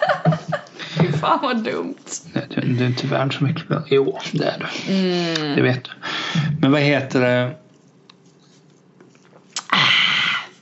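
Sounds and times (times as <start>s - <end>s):
laughter: 0.0s - 1.2s
speech: 1.2s - 7.6s
person slurping a drink: 9.1s - 10.5s
soft wet mouth sounds: 9.2s - 10.2s.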